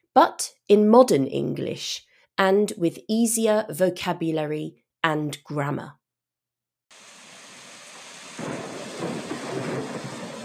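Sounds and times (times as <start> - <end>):
speech: 0.2 - 6.0
steady rain in a thunderstorm: 6.9 - 10.4
deep heavy rolling thunder: 7.8 - 10.4.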